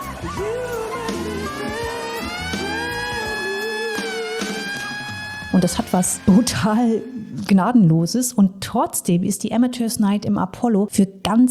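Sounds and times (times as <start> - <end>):
noisy crowd with scattered shouts: 0.0 - 6.3
speech: 0.2 - 1.8, 5.6 - 11.4
wailing siren: 0.2 - 7.5.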